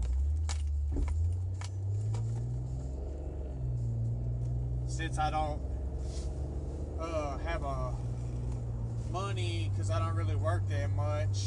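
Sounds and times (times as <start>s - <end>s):
faint clicks and rattles in the car cabin: 0.0s - 2.5s
car engine rumbling as it pulls out onto the road, heard inside the vehicle: 0.0s - 11.4s
speech: 5.0s - 5.7s, 7.0s - 8.1s, 9.1s - 11.4s.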